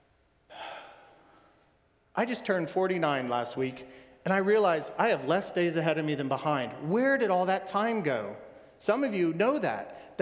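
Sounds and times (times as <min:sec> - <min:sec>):
deep breath drawn in: 0:00.5 - 0:01.7
speech: 0:02.2 - 0:10.2.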